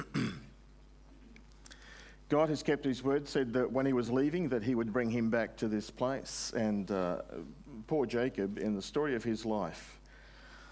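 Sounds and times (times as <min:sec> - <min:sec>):
single short throaty cough: 0:00.0 - 0:00.6
speech: 0:02.3 - 0:10.0.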